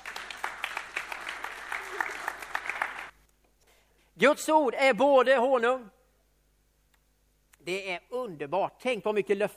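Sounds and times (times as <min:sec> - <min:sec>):
room full of people applauding: 0:00.0 - 0:03.1
speech: 0:04.2 - 0:06.0, 0:07.6 - 0:09.5.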